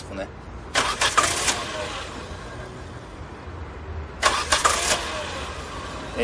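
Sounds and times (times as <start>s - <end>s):
low steady car engine rumble: 0.0s - 6.2s
speech: 0.2s - 0.4s
car engine cranking: 0.7s - 2.8s, 4.2s - 6.2s.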